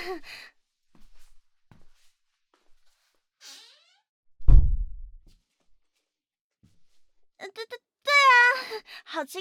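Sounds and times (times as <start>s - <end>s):
speech: 0.1s - 0.6s, 8.8s - 9.4s
classroom door shut with a solid thud: 4.4s - 4.9s
faint swish: 4.4s - 5.1s.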